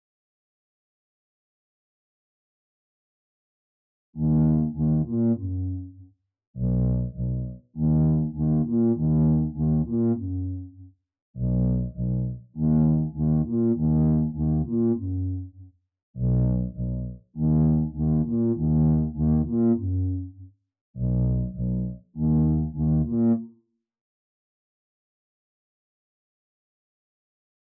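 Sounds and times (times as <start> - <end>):
bass: 4.2 - 23.6.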